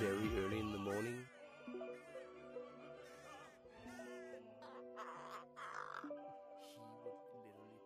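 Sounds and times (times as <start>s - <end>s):
music played back from a phone: 0.0s - 7.8s
speech: 0.9s - 1.4s
pet crow cawing in harsh raspy bursts: 1.2s - 6.1s.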